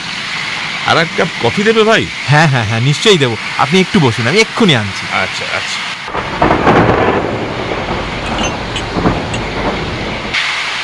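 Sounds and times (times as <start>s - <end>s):
heavy rain: 0.0s - 10.8s
speech: 0.9s - 6.7s
thunder rumbling: 6.0s - 10.4s.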